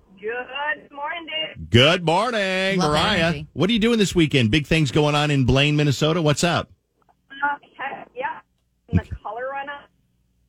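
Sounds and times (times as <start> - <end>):
speech: 0.2 - 6.8
distorted caller voice over speakerphone phone line: 2.7 - 3.5.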